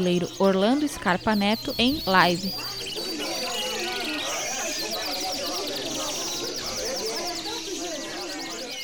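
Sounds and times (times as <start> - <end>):
speech: 0.0 - 2.8
birds chirping and twittering: 0.0 - 8.8
murmuring voices: 0.0 - 8.8.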